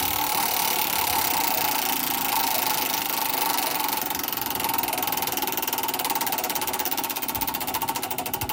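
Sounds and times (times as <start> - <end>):
giant prize wheel spinning with pointer clicking: 0.0 - 8.5.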